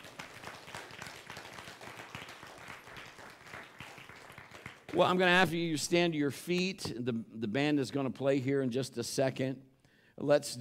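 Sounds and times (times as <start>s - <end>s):
audience clapping hands: 0.0s - 5.2s
speech: 4.9s - 10.5s.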